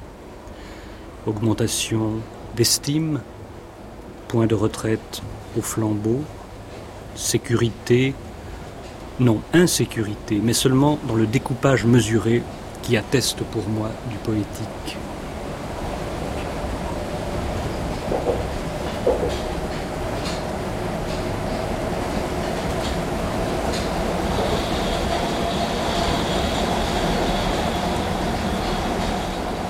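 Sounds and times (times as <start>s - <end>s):
speech: 1.2s - 3.4s, 4.3s - 6.4s, 7.2s - 8.2s, 9.2s - 15.1s
metro train rumbling on rails: 3.2s - 29.6s
faint high whine of metro train wheels: 15.0s - 29.6s
small clanks: 17.6s - 24.0s.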